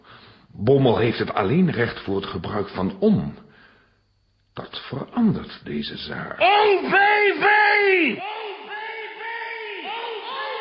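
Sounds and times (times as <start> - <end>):
speech: 0.6 - 3.4, 4.6 - 8.4
crowd shouting: 6.4 - 10.5.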